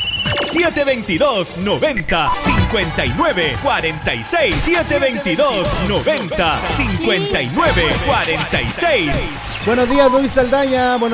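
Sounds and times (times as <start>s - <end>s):
telephone ringing with high sustained electronic tone for incoming call: 0.0s - 1.1s, 9.1s - 10.6s
speech: 0.2s - 11.1s
laughter: 2.5s - 10.8s.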